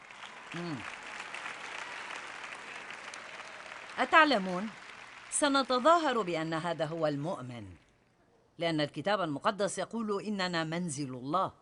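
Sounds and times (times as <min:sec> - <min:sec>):
audience applause: 0:00.0 - 0:06.8
speech: 0:00.5 - 0:01.0, 0:04.0 - 0:04.8, 0:05.4 - 0:07.8, 0:08.6 - 0:11.5.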